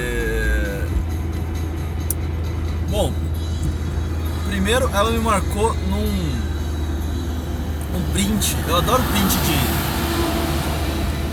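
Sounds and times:
heavy trucks rumbling past on a highway: 0.0 - 11.3
speech: 4.6 - 6.4, 8.0 - 10.4.

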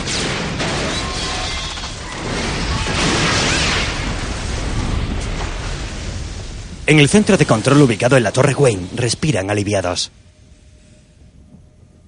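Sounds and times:
explosion with roaring rumble in a parking garage: 0.0 - 8.2
speech: 6.9 - 10.2.

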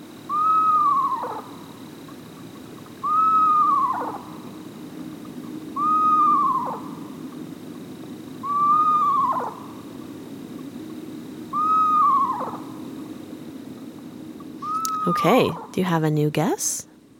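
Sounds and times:
low hum: 0.0 - 17.1
eastern screech owl whinny calls: 0.2 - 2.2, 2.9 - 4.7, 5.5 - 7.3, 8.4 - 10.0, 11.5 - 12.9, 14.6 - 15.8
speech: 15.1 - 16.9.

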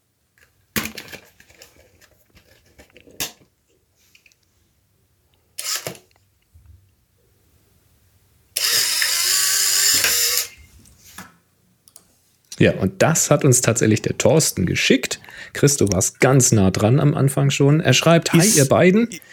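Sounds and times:
Polaroid SX-70 instant camera mechanical clicks and snaps: 5.6 - 6.1
speech: 12.6 - 19.3.

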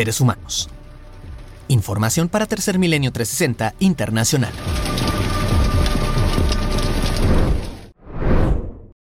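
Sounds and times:
speech: 0.0 - 0.8, 1.7 - 5.4
hail clattering on hard surfaces of an outdoor amphitheater: 3.8 - 7.8
rushing whoosh: 7.0 - 8.9.

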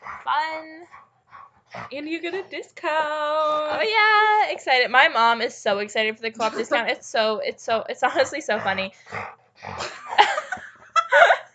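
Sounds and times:
dog making strained grumbles and whines: 0.0 - 2.4, 8.1 - 10.0
speech: 0.2 - 1.1, 1.7 - 9.9
laughter: 6.4 - 7.0, 9.8 - 11.5.

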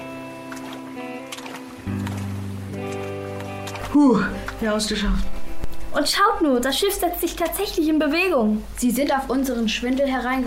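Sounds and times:
three people wading through shallow water: 0.0 - 5.9
steady droning musical bed: 0.0 - 6.0
speech: 3.9 - 5.4, 6.0 - 10.4.

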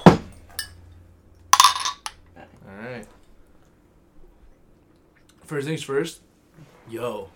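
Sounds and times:
glasses of bourbon barrel stout clinking in a toast: 1.6 - 2.1
speech: 5.5 - 7.3.

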